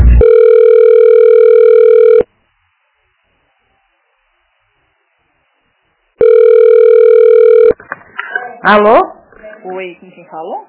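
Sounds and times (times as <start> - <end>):
ringback tone while calling another office extension: 0.2 - 2.2, 6.2 - 7.8
speech: 8.7 - 9.1, 9.8 - 10.6.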